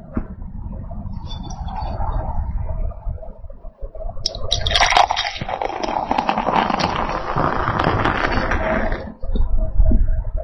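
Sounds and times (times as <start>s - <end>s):
low rumble: 0.0s - 10.4s
Märzen beer pouring into a glass: 4.3s - 7.6s.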